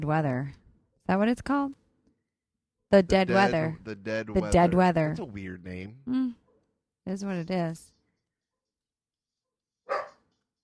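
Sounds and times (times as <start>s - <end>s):
speech: 0.0s - 1.8s, 2.9s - 6.4s, 7.1s - 7.9s
single sharp dog bark: 9.8s - 10.3s.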